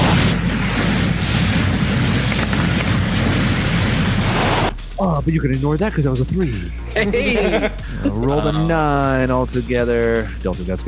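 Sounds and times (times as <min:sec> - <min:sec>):
blaze rifle blast sound effect in a tabletop role-playing game: 0:00.0 - 0:04.7
speech: 0:05.2 - 0:10.8
laughter: 0:06.8 - 0:09.2.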